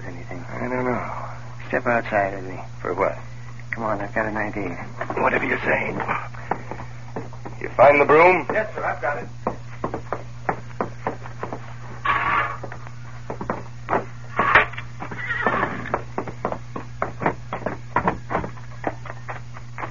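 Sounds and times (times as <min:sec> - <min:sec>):
speech: 0:01.7 - 0:06.4, 0:07.6 - 0:09.4
hoof clops: 0:06.0 - 0:19.8
horse neighing: 0:12.0 - 0:12.7, 0:14.4 - 0:16.0.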